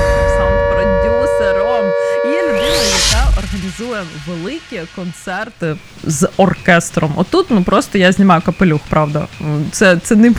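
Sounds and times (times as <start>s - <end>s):
air raid alert siren: 0.0s - 5.4s
speech: 3.8s - 10.3s.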